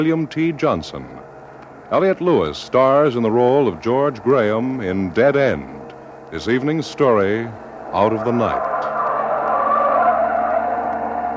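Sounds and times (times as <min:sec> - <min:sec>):
speech: 0:00.0 - 0:01.2, 0:01.9 - 0:08.7
car tires squealing and skidding out of control with no brakes: 0:08.0 - 0:11.3.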